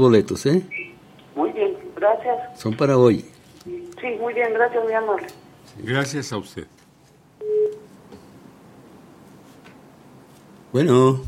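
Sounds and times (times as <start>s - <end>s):
speech: 0.0s - 0.8s, 2.0s - 6.8s, 10.7s - 11.2s
faint hiss: 0.0s - 11.2s
telephone line tone while a call connects: 7.4s - 7.9s.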